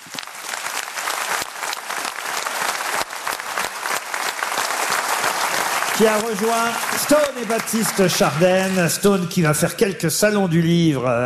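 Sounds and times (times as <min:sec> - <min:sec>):
sizable audience in Montluçon France applauding a performer: 0:00.0 - 0:09.6
speech: 0:06.0 - 0:11.2.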